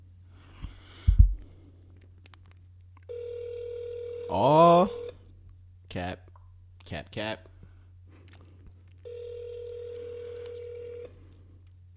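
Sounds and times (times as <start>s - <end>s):
low electrical hum: 0.0s - 11.9s
ringback tones of an outgoing phone call: 3.1s - 5.1s, 9.0s - 11.1s
speech: 4.3s - 5.0s, 6.9s - 7.5s.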